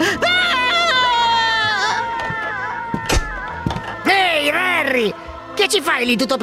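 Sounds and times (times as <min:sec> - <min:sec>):
sobbing bursts: 0:00.0 - 0:04.0
screaming and wailing cries: 0:00.0 - 0:04.1
speech: 0:05.0 - 0:06.4.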